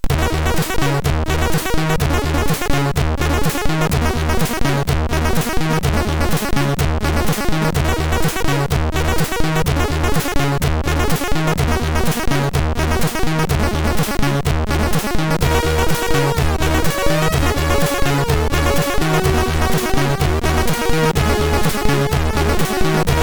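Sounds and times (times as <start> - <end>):
game music on MOS6581R3 sound chip: 0.1 - 23.2.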